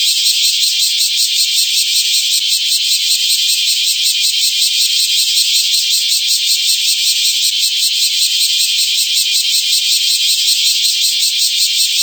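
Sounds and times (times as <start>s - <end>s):
bear cicada song: 0.0s - 12.0s.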